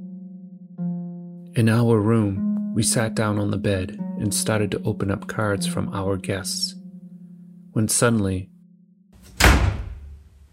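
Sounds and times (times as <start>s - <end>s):
speech: 1.6s - 6.8s, 7.7s - 8.5s
door slamming shut in an old building: 9.2s - 10.4s.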